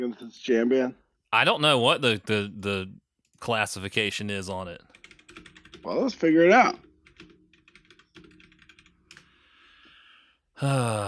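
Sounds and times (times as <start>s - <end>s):
speech: 0.0s - 4.9s, 5.8s - 6.8s, 10.6s - 11.0s
computer keyboard keys clacking: 3.2s - 10.0s.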